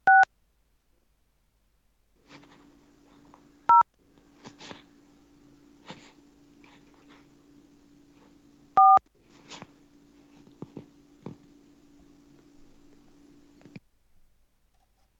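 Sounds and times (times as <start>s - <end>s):
faint steady hum: 0.0s - 15.1s
breathing: 2.2s - 3.5s, 4.2s - 7.4s, 9.2s - 11.4s
telephone dialing tones: 8.8s - 9.0s.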